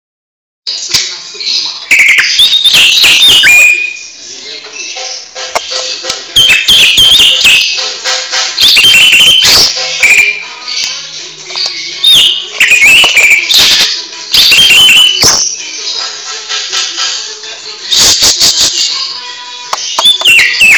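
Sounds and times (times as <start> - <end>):
greater green leafbird singing: 1.4 - 4.2, 4.8 - 7.9, 8.6 - 16.0, 19.8 - 20.7.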